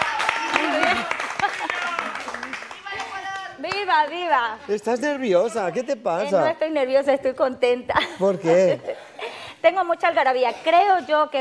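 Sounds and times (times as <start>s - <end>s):
audience applauding with steady dense clapping: 0.0s - 4.3s
speech: 3.9s - 9.0s, 9.6s - 11.3s.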